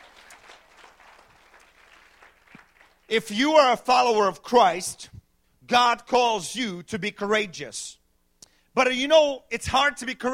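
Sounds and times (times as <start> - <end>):
audience clapping hands: 0.0 - 3.1
speech: 3.1 - 5.1, 5.7 - 8.0, 8.8 - 10.3.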